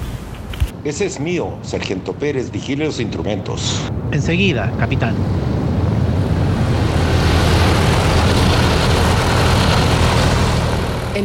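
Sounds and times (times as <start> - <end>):
speech: 0.8 - 5.6
wind noise of a diving plane: 2.5 - 11.2
propeller aircraft engine roaring in a steep dive: 3.4 - 11.2.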